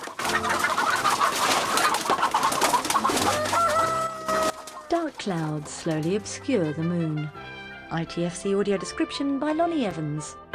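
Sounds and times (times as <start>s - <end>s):
chicken wings flapping: 0.0s - 6.3s
flock of chickens squawking and clucking in panic: 0.0s - 7.6s
speech: 5.2s - 10.4s.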